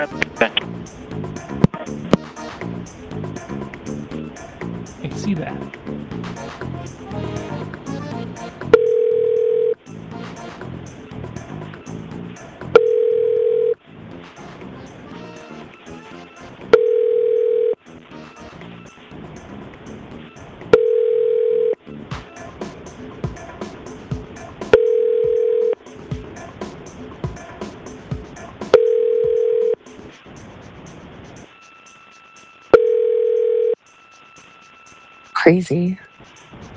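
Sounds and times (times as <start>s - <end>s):
speech: 0.0s - 1.1s, 35.5s - 36.0s
noise: 0.0s - 36.7s
telephone ringback tone during an outgoing call to a boat house: 7.2s - 10.0s, 12.7s - 13.8s, 15.1s - 19.1s, 20.2s - 21.8s, 24.7s - 25.8s, 28.7s - 29.8s, 31.5s - 36.7s.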